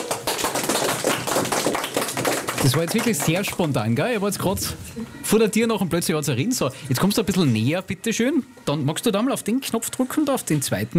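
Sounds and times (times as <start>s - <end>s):
applause in a studio: 0.0s - 4.1s
speech: 2.6s - 10.9s.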